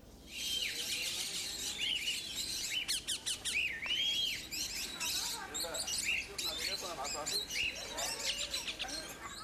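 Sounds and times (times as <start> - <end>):
many exotic birds chirping and whistling in a sanctuary: 0.2 - 9.4.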